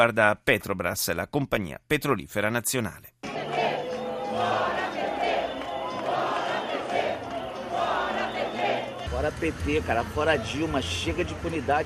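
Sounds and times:
speech: 0.0s - 3.5s, 9.2s - 11.8s
large protest crowd chanting slogans outdoors: 3.2s - 9.2s.

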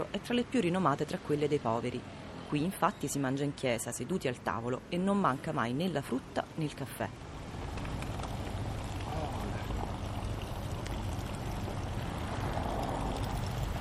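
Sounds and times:
speech: 0.1s - 7.3s
water pouring steadily from a street drinking fountain: 8.2s - 13.7s.

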